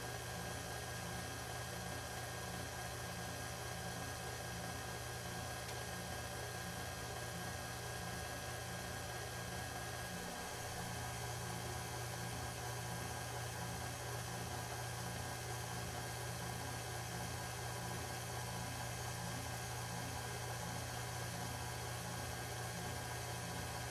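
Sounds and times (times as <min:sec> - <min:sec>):
kitchen blender stirring cake batter: 0:00.0 - 0:23.9.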